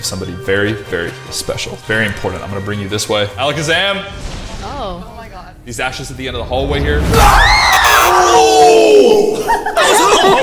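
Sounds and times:
speech: 0:00.0 - 0:10.4
person screaming with wavering falling pitch: 0:07.2 - 0:09.4
noisy crowd yelling and laughing: 0:07.2 - 0:10.4.

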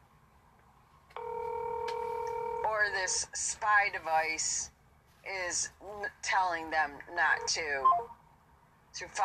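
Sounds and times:
telephone line click: 0:01.2 - 0:02.4
steady electronic telephone tone after hang-up: 0:01.2 - 0:03.2
speech: 0:02.8 - 0:08.2, 0:09.0 - 0:09.2.

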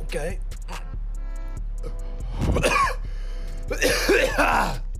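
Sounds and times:
speech: 0:00.1 - 0:00.5
harsh raspy coughing after a smoke: 0:01.8 - 0:04.9.

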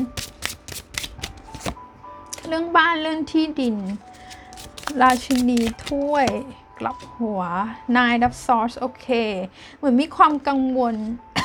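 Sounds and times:
tarot cards being shuffled: 0:00.0 - 0:01.8, 0:03.6 - 0:06.4
speech: 0:02.5 - 0:04.1, 0:04.9 - 0:11.3.

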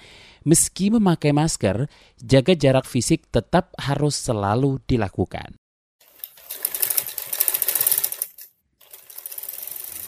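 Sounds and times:
speech: 0:00.4 - 0:05.6
sewing machine stitching face masks at a home: 0:06.0 - 0:10.0.

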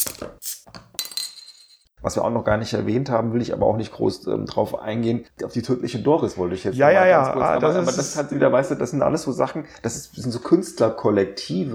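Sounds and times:
glasses clinking together in a toast: 0:00.0 - 0:01.8
speech: 0:02.0 - 0:11.7.

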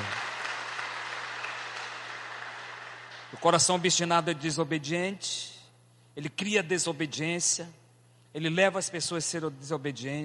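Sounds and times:
church audience applauding: 0:00.0 - 0:03.7
speech: 0:03.3 - 0:05.6, 0:06.2 - 0:07.8, 0:08.4 - 0:10.2.

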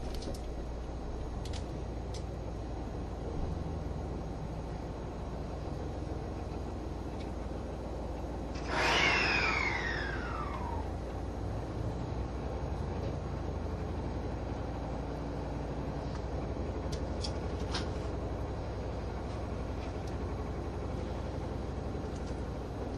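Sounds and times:
HC85 series hybrid limited express train engine and motor humming inside the Green Car: 0:00.0 - 0:22.9
brief whining sweep of HC85 series hybrid train: 0:08.3 - 0:12.6.

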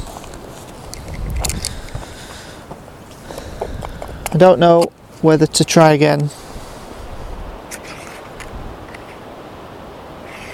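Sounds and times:
strong blustery wind outdoors buffeting the microphone: 0:00.0 - 0:10.5
speech: 0:04.3 - 0:06.4.

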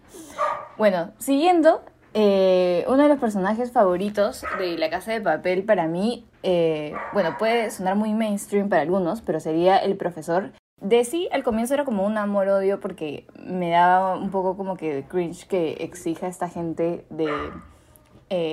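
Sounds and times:
dog barking in the house: 0:00.3 - 0:00.8, 0:04.4 - 0:04.8, 0:06.9 - 0:07.8, 0:17.2 - 0:17.7
speech: 0:00.8 - 0:17.7, 0:18.3 - 0:18.5.

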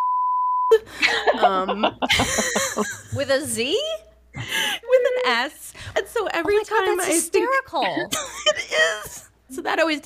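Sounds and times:
censor bleep electronic tone: 0:00.0 - 0:00.7
laughter: 0:00.7 - 0:03.3
speech: 0:00.7 - 0:10.0.

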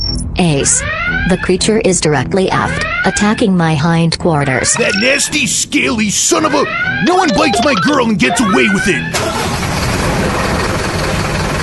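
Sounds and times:
speech: 0:00.4 - 0:10.8
car engine starting and revving hard in reverse: 0:08.8 - 0:11.6.

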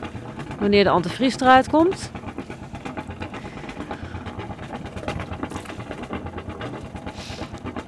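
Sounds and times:
boat engine running with low rhythmic chugging: 0:00.0 - 0:07.8
speech: 0:00.6 - 0:02.2.

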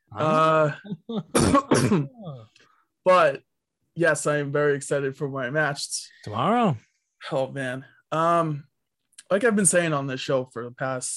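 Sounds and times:
speech: 0:00.1 - 0:02.2, 0:03.0 - 0:08.7, 0:09.3 - 0:11.1
drawn-out voiced throat clearing: 0:00.2 - 0:02.4
harsh noisy coughs with a trailing rasp: 0:01.2 - 0:02.3.

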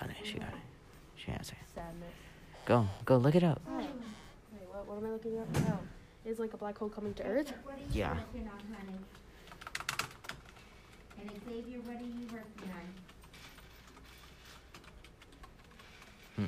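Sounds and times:
speech: 0:00.2 - 0:04.0, 0:04.8 - 0:09.2, 0:11.2 - 0:13.2
rapid clicking of keys on a computer keyboard: 0:08.5 - 0:16.4.

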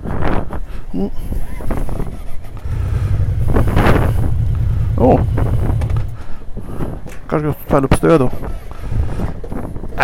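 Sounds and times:
gusty wind buffeting the microphone: 0:00.0 - 0:10.0
speech: 0:00.9 - 0:01.4, 0:07.3 - 0:08.6
vehicle engine idling: 0:02.4 - 0:06.6.

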